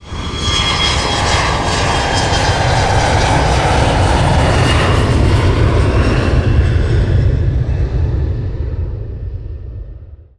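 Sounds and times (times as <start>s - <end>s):
passenger plane passing by: 0.0s - 10.1s.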